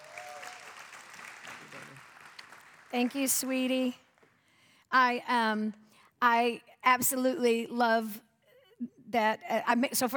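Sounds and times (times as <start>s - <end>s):
faint cheer: 0.0s - 2.0s
audience applause: 0.0s - 3.2s
speech: 2.9s - 4.0s, 4.9s - 10.1s.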